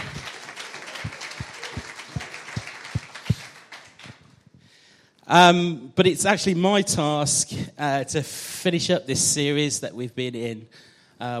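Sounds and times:
louder claps or thumps: 0.0 - 4.3
crowd applauding: 0.0 - 4.4
speech: 5.3 - 11.3.

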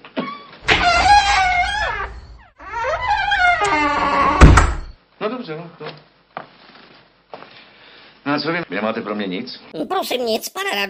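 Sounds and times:
door creaking on squeaky hinges: 0.2 - 5.0
speech: 5.4 - 6.1, 8.4 - 10.8.

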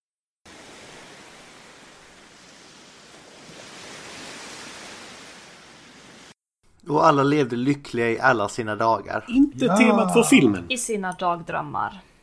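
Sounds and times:
waves breaking on a shore: 0.4 - 6.4
speech: 6.9 - 12.1
laughter: 9.6 - 10.6.

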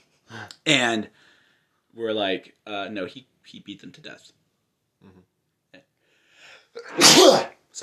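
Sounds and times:
speech: 0.3 - 1.2, 2.0 - 4.4, 5.0 - 5.3, 6.8 - 7.8
person sneezing: 6.8 - 7.6.

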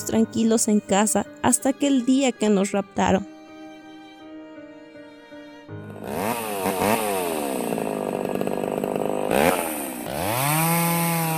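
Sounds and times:
speech: 0.1 - 3.3
chainsaw engine revving while cutting down trees: 5.9 - 11.3.

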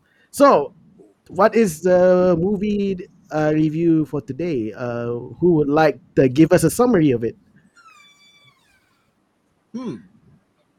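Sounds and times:
speech: 0.3 - 7.4, 9.7 - 10.1
door creaking like a cat's meow: 7.7 - 9.1.

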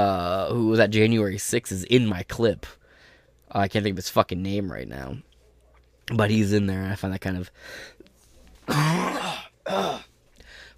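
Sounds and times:
speech: 0.0 - 2.8, 3.5 - 5.3, 6.1 - 8.0, 8.7 - 10.1
person coughing rough throaty coughs: 8.6 - 10.1.

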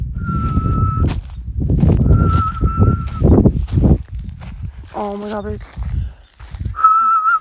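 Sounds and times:
person whistling to call an animal: 0.2 - 1.1, 2.0 - 3.3, 6.7 - 7.3
speech: 5.0 - 5.8.

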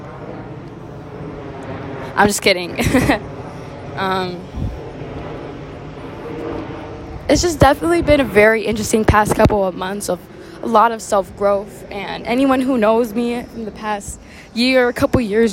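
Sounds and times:
airplane passing overhead: 0.0 - 15.5
speech: 2.2 - 3.3, 4.0 - 4.8, 7.3 - 15.5
person laughing: 2.7 - 3.2.

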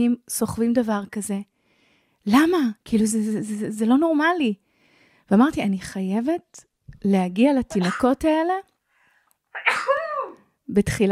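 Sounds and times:
speech: 0.0 - 1.5, 2.2 - 4.6, 5.3 - 8.7, 10.7 - 11.1
sneeze: 7.8 - 8.2, 9.5 - 10.4.

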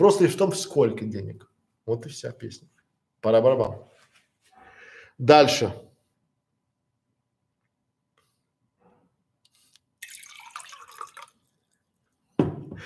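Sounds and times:
speech: 0.0 - 3.9, 5.2 - 5.9
water pouring into a glass: 10.0 - 12.0.

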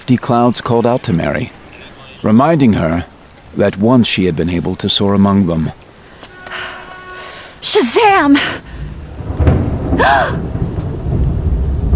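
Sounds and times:
speech: 0.1 - 1.6, 2.2 - 5.8, 7.7 - 8.7, 10.0 - 10.4
thunder rumbling: 6.3 - 11.9.

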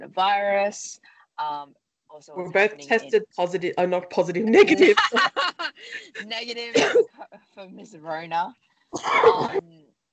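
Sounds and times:
speech: 0.0 - 9.9
laughter: 4.6 - 6.3
short rough cough: 6.8 - 7.1, 9.0 - 9.6.

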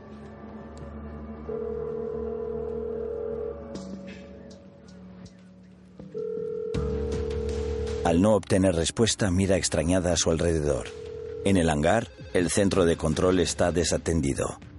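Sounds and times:
speech: 1.5 - 2.2, 8.0 - 14.7
telephone ringing through a headset: 1.5 - 3.6, 6.2 - 8.2, 10.7 - 11.8.

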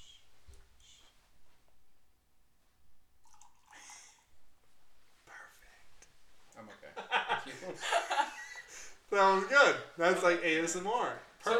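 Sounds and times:
liquid pouring: 3.2 - 4.2
laughter: 6.6 - 9.0
speech: 9.1 - 11.5.

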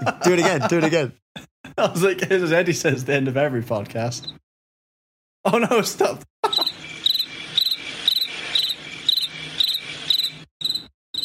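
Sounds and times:
speech: 0.0 - 1.2, 1.8 - 4.4, 5.4 - 6.3
laughter: 0.0 - 2.4, 6.4 - 6.8
cricket chirping: 6.4 - 11.2.

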